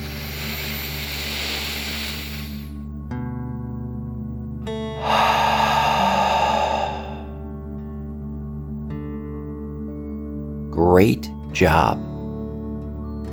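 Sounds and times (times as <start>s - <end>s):
slow deep breathing in and out: 0.0s - 2.8s, 5.0s - 7.6s
soft sustained musical tones: 0.0s - 13.3s
speech: 11.0s - 12.1s.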